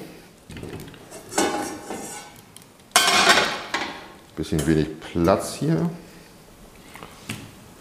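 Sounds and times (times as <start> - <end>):
metallic clanks and scrapes of cookware: 0.7 - 2.4, 3.0 - 5.3
speech: 4.4 - 6.0.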